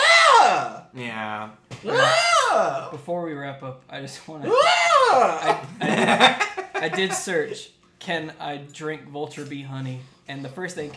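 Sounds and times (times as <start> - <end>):
eastern screech owl screeching: 0.0 - 0.8, 1.9 - 2.7
speech: 0.9 - 10.9
laughter: 5.2 - 7.3.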